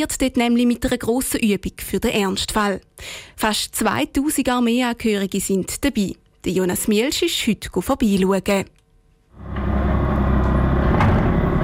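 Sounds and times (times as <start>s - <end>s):
speech: 0.0s - 8.8s
heavy wheeled armored personnel carriers rumbling past: 9.4s - 11.6s.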